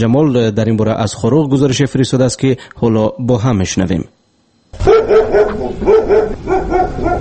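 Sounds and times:
speech: 0.0 - 7.1
stray dogs barking in the streets and bazaars of Khorog: 4.8 - 7.1.

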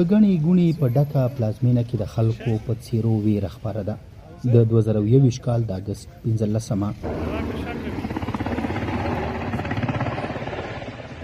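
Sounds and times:
speech: 0.0 - 8.1
helicopter rotor chop over Kabul during evacuation: 7.0 - 11.2.

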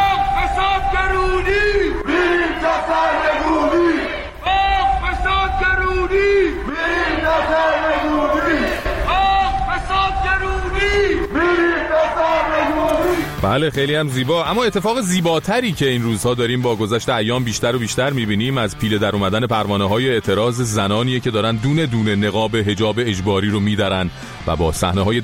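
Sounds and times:
protest crowd chanting slogans in unison: 0.0 - 13.4
speech: 13.4 - 25.2.

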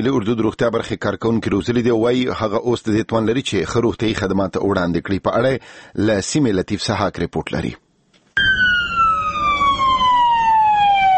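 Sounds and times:
speech: 0.0 - 7.8
army medical unit ambulance siren wailing: 8.4 - 11.1.

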